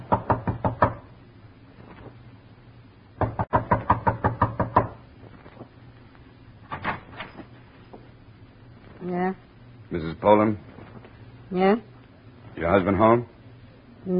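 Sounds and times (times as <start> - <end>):
sharp knocking on the door of a home: 0.0 - 1.1, 3.2 - 5.0
speech: 9.9 - 10.7, 11.5 - 11.9, 12.7 - 13.3.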